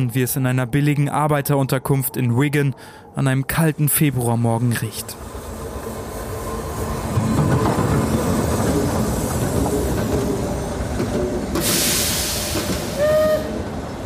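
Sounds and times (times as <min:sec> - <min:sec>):
speech: 0:00.0 - 0:05.3
train idling at a station: 0:04.0 - 0:14.0
sharp hiss of air: 0:11.6 - 0:13.2.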